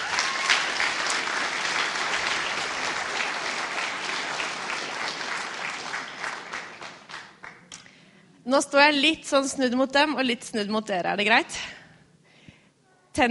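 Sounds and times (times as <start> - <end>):
sustained applause from a large audience: 0.0 - 7.7
speech: 8.5 - 11.8.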